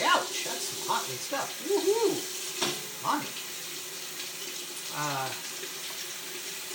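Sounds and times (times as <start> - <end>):
tap water running into a sink rinsing potatoes: 0.0 - 6.7
speech: 1.1 - 3.5, 5.0 - 5.8.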